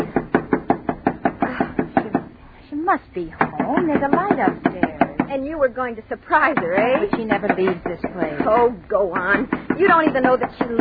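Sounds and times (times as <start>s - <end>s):
firm knocking on the door of a house: 0.0s - 2.3s, 3.4s - 5.3s, 6.5s - 10.7s
speech: 2.9s - 10.7s.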